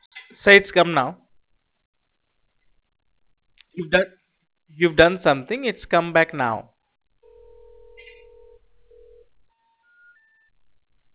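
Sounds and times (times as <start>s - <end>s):
speech: 0.4s - 1.2s, 3.8s - 6.7s
telephone dial tone on a phone line: 7.2s - 10.4s.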